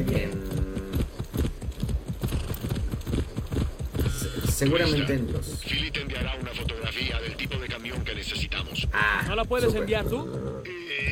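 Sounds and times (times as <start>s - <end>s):
horse hooves clip-clopping at a brisk walk: 0.0s - 11.0s
speech: 4.6s - 11.0s.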